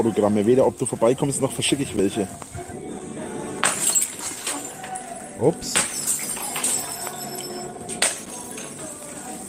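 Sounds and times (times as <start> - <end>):
speech: 0.0 - 2.8, 5.4 - 5.9
glass bottles dropped and breaking: 3.6 - 5.0, 5.6 - 8.7
glass shards clinking: 3.6 - 8.8.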